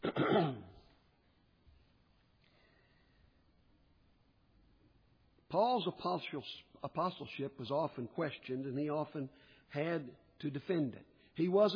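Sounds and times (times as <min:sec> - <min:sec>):
speaker giving a Bible sermon coughing muffled: 0:00.0 - 0:00.8
speech: 0:00.2 - 0:00.7, 0:05.5 - 0:11.7.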